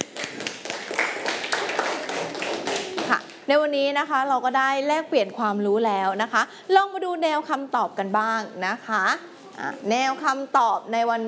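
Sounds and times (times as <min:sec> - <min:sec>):
class of students applauding a student representative's answer in a classroom: 0:00.0 - 0:03.4
speech: 0:03.5 - 0:11.2.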